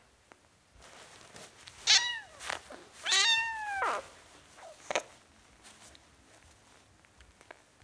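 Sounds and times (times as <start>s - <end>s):
four-week-old kitten meowing: 1.9s - 5.0s.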